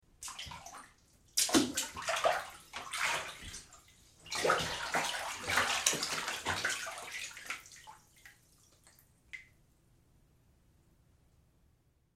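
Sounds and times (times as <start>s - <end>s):
human footsteps in water: 0.2s - 0.8s, 1.4s - 8.4s.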